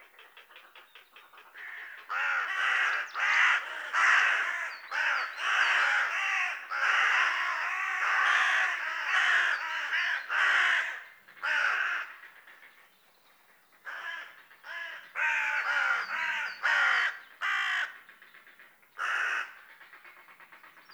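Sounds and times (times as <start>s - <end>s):
carrion crow Corvus corone cawing: 1.6s - 12.2s, 13.9s - 18.0s, 19.0s - 19.6s.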